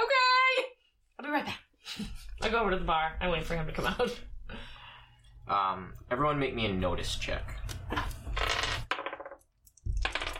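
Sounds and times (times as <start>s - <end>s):
speech: 1.4s - 4.3s, 5.5s - 8.1s
dice rolling across a hard tabletop: 8.0s - 10.3s.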